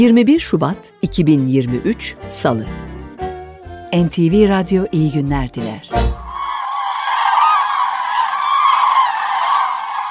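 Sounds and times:
speech: 0.0s - 2.9s, 3.9s - 6.1s
many common cranes honking in a dense chorus: 6.2s - 10.1s.

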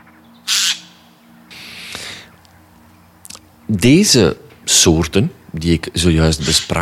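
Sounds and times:
rook cawing: 0.0s - 2.8s
low steady hum: 0.0s - 6.8s
speech: 3.7s - 6.8s.

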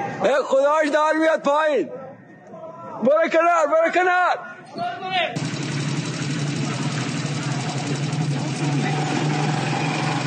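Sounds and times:
speech: 0.2s - 2.0s, 3.0s - 5.7s
fire truck engines rumbling: 5.4s - 10.2s.

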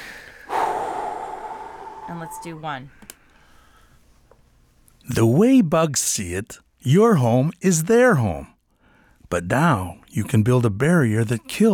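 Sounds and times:
person exhaling: 0.0s - 2.7s
speech: 2.1s - 3.2s, 5.1s - 8.5s, 9.3s - 11.7s.

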